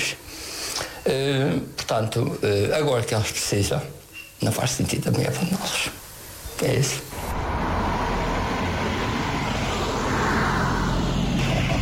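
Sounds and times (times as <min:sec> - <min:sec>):
speech: 0:01.1 - 0:06.0, 0:06.6 - 0:07.2
car engine and tyre rumble: 0:07.2 - 0:11.7.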